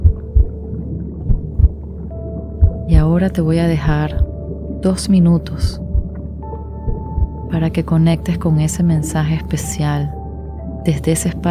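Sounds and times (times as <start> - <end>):
slow heartbeat: 0.0 - 1.8, 2.6 - 3.2, 3.9 - 4.5, 5.5 - 7.5
speech: 3.0 - 5.8, 7.5 - 10.2, 10.8 - 11.5.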